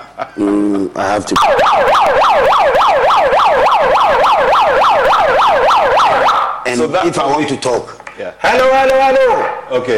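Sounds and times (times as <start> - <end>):
speech: 0.4 - 9.9
handheld siren wailing: 1.4 - 6.7.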